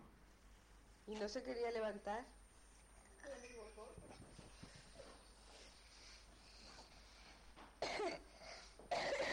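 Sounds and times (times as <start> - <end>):
speech: 1.1 - 2.4
person coughing: 7.8 - 9.3.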